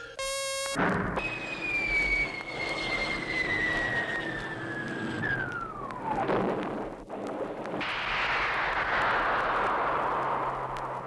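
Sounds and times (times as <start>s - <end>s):
rumbling noise: 0.8s - 11.0s
high descending whistle of a spaceship landing sound effect: 1.2s - 6.2s.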